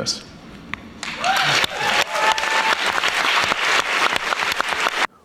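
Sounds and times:
speech: 0.0 - 0.3
audience applauding: 1.0 - 5.1.

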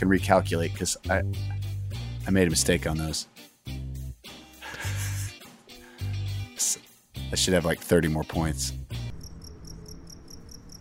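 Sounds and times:
speech: 0.0 - 1.7, 2.3 - 3.8, 7.3 - 8.9
laughter: 4.6 - 5.4
crickets chirping: 9.0 - 10.7.

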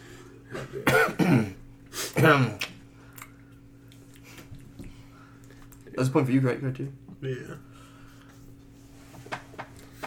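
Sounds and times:
person clearing throat: 0.5 - 2.6
speech: 0.6 - 1.5, 2.2 - 2.7, 6.0 - 7.7.

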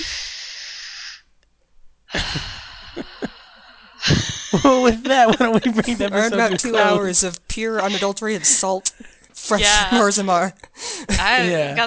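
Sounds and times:
deep breath taken to calm down after a rant: 0.0 - 1.3, 2.1 - 4.6, 10.7 - 11.1
speech: 2.2 - 3.2, 4.5 - 11.8
laughter: 4.0 - 10.2.

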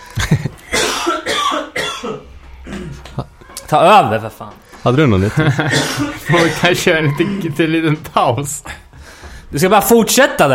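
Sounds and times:
laughter: 0.0 - 0.8, 5.0 - 8.9
person clearing throat: 0.2 - 3.1, 5.5 - 7.6
person coughing: 0.2 - 3.1, 5.5 - 7.5
speech: 3.2 - 8.8, 9.5 - 10.5.

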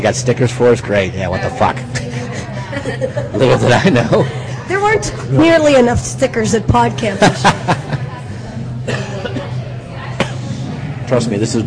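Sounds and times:
speech: 0.0 - 2.1, 2.8 - 8.0, 11.1 - 11.6
low hum: 0.0 - 11.6
laughter: 2.0 - 4.7, 7.0 - 9.7
raspy coughs from a person getting over a cold: 8.8 - 9.6.

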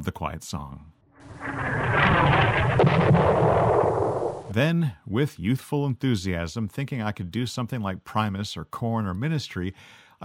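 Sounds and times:
speech: 0.0 - 2.0, 4.5 - 10.2
missile landing explosion rumble from a sound effects CD: 1.2 - 4.6.

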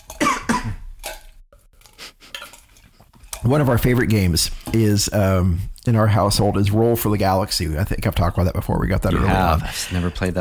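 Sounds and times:
harsh coughs and throat noises: 0.2 - 0.9
speech: 3.4 - 10.3.

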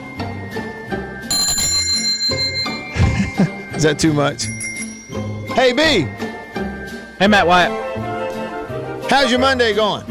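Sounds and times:
bicycle bell ringing: 1.3 - 7.6
speech: 3.4 - 4.6, 5.6 - 6.2, 7.2 - 7.8, 9.1 - 10.0.

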